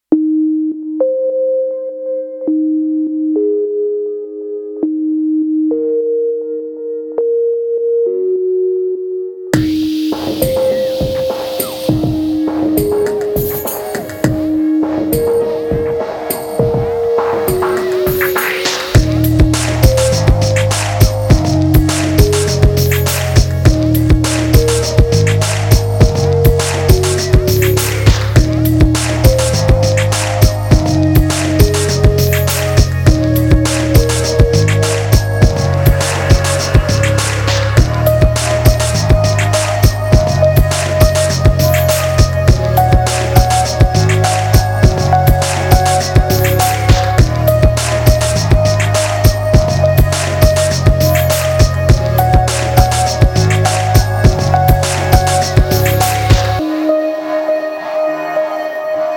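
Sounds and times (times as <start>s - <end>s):
chillout electronic music: 0.0s - 59.1s.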